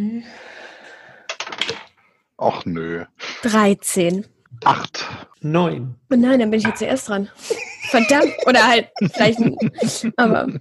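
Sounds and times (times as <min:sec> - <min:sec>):
several small plastic dice rolling on a tabletop: 0:01.3 - 0:01.9
speech: 0:02.4 - 0:10.5
laughter: 0:07.4 - 0:10.5.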